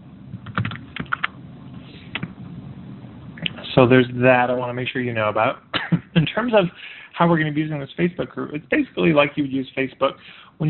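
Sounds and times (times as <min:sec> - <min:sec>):
faint steady hiss: 0:00.0 - 0:10.6
typing on a computer keyboard: 0:00.4 - 0:01.3
speech: 0:03.8 - 0:05.7, 0:06.4 - 0:10.6.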